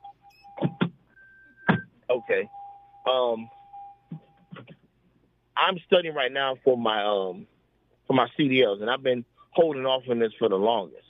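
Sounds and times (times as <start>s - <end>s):
car door-open warning chime dinging: 1.6s - 4.4s
speech: 2.3s - 3.6s, 5.6s - 7.5s, 8.1s - 11.0s.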